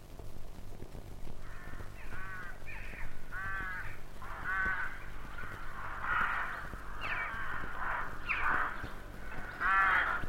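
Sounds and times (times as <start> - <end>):
steady low hum: 0.0 - 10.2
busy flock of rooks cawing: 1.4 - 10.2.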